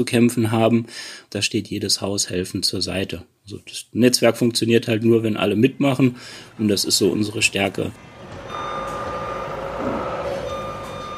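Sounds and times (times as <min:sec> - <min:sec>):
speech: 0:00.0 - 0:08.4
trucks rolling off loading ramps: 0:05.6 - 0:11.1
high truck reversing tone: 0:06.0 - 0:11.1.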